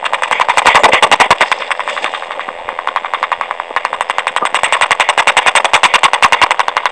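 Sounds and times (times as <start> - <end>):
clack: 0.0 - 6.8.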